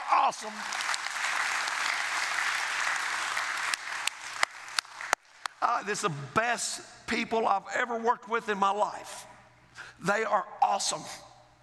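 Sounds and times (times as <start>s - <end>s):
audience in a church clapping: 0.0s - 5.6s
speech: 0.3s - 0.9s, 5.6s - 9.3s, 10.0s - 11.3s.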